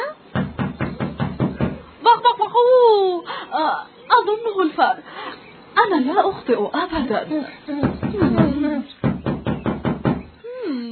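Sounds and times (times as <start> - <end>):
firm knocking on a door: 0.3 - 1.9, 7.8 - 10.3
speech: 2.6 - 8.9.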